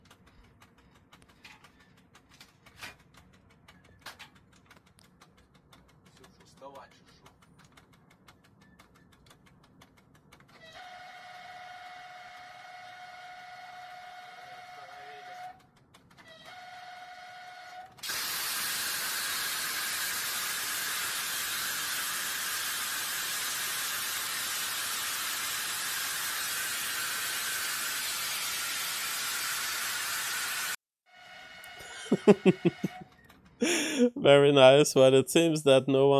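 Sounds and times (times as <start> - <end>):
high-speed train siren during emergency braking: 10.6 - 15.6, 16.2 - 31.9
laughter: 31.8 - 34.2
speech: 32.1 - 32.8, 33.6 - 36.1.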